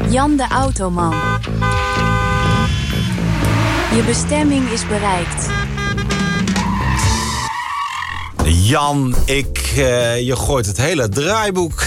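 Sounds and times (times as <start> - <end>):
car engine roaring as the car pulls away: 0.0 - 8.6
speech: 0.1 - 1.8, 3.9 - 5.7, 8.7 - 11.8
car tyres squealing: 1.2 - 8.8.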